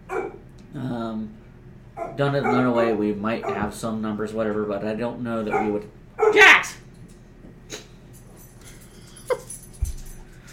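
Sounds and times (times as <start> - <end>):
dogs yipping and whimpering over bone: 0.0 - 0.4, 2.0 - 3.7, 5.4 - 6.7
speech: 0.7 - 1.4, 2.0 - 6.8.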